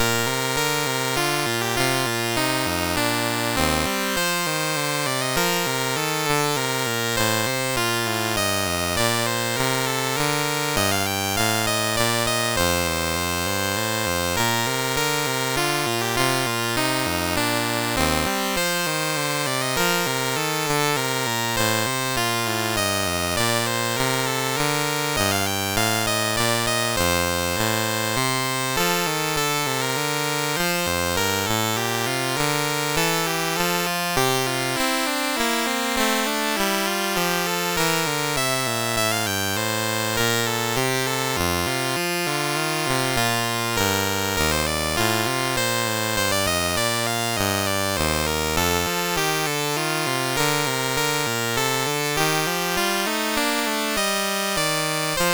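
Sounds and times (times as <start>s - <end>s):
minuet on a sound chip: 0.0s - 55.3s.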